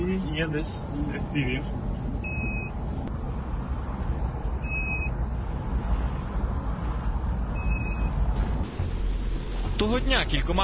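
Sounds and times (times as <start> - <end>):
dense city street traffic rumbling with cars passing: 0.0 - 10.6
speech: 0.4 - 2.3, 9.8 - 10.6
two-tone electronic beep: 2.2 - 2.7, 4.6 - 5.1, 7.6 - 8.2.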